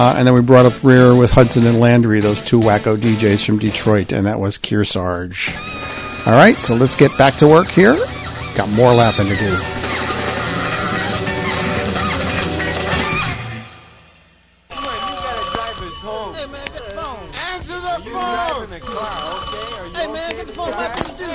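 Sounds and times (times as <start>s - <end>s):
music: 0.0s - 4.2s, 5.5s - 14.3s
speech: 0.0s - 10.1s
loud warbling vocal sounds: 5.5s - 13.6s
telephone bell ringing: 5.6s - 7.4s, 14.7s - 21.3s.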